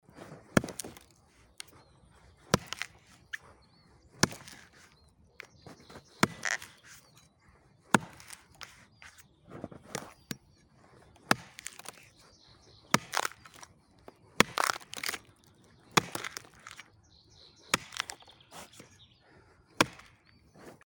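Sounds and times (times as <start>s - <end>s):
axe chopping a log: 0.2s - 1.8s, 2.4s - 3.4s, 4.1s - 7.2s, 7.8s - 9.2s, 11.2s - 12.2s, 12.8s - 16.9s, 17.6s - 18.8s, 19.8s - 20.8s.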